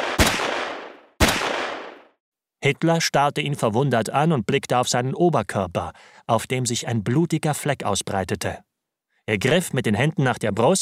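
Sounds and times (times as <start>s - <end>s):
pistol shots: 0.0s - 2.1s
speech: 2.6s - 8.7s, 9.3s - 10.8s.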